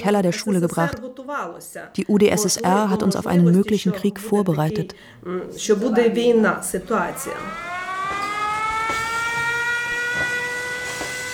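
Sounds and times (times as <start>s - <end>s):
speech: 0.0s - 7.7s
air raid siren wailing in Uzhhorod Ukraine: 6.4s - 11.3s.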